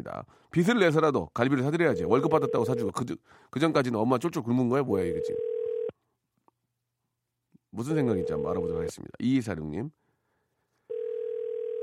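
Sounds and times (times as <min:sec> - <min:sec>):
speech: 0:00.0 - 0:05.5, 0:07.7 - 0:10.0
telephone ringback tone: 0:02.1 - 0:02.9, 0:05.1 - 0:05.9, 0:10.9 - 0:11.8.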